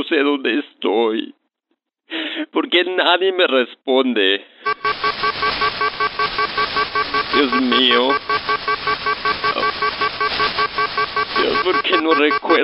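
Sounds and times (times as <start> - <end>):
speech: 0.0 - 1.4, 2.1 - 4.8, 7.4 - 9.4, 11.4 - 12.6
loud alarm beeping in a rapid pulse: 4.7 - 12.6.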